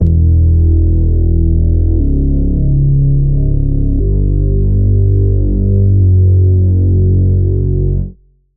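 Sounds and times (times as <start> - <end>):
detuned synth bass: 0.0 - 8.0.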